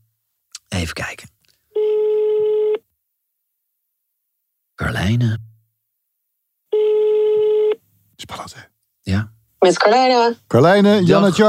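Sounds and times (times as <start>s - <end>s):
speech: 0.8s - 1.4s, 5.0s - 5.5s, 8.5s - 11.4s
telephone ring tone from an outgoing call: 1.7s - 2.8s, 6.7s - 7.8s.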